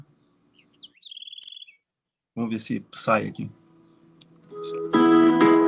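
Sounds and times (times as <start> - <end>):
small bird chirping: 0.0 - 1.9
speech: 2.4 - 3.6, 4.6 - 5.5.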